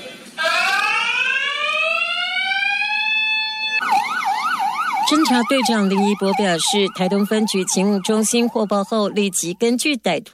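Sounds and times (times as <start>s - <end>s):
electronic post office alarm set off during a robbery: 0.4s - 9.9s
speech: 5.1s - 10.3s.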